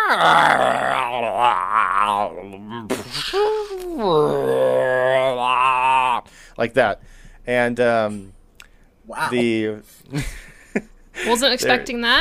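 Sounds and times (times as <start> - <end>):
person imitating a deep roar with their voice: 0.0 - 6.3
speech: 0.1 - 5.2, 6.6 - 8.4, 9.1 - 12.1.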